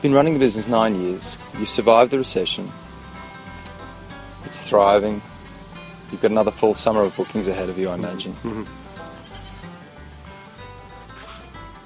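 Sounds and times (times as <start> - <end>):
speech: 0.0 - 2.9, 4.5 - 5.3, 6.1 - 8.8
goats bleating: 6.8 - 9.7.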